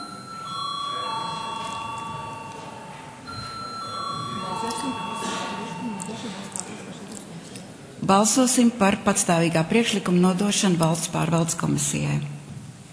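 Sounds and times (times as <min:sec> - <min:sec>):
voting bell ringing in a parliament chamber: 0:00.0 - 0:06.8
murmur of voices: 0:00.0 - 0:10.8
speech: 0:08.1 - 0:12.4.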